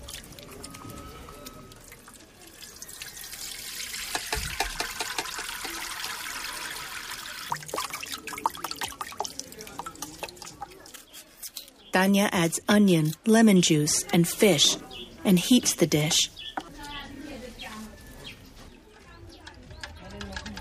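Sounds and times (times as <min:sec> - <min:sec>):
water splashing and trickling: 0:00.0 - 0:11.5
speech: 0:12.0 - 0:16.4.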